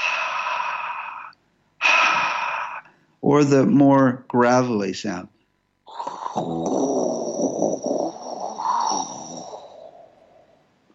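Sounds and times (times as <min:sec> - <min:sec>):
voice imitating white noise with breathy H sounds: 0:00.0 - 0:03.0, 0:05.9 - 0:10.6
speech: 0:03.2 - 0:05.4, 0:06.4 - 0:08.1.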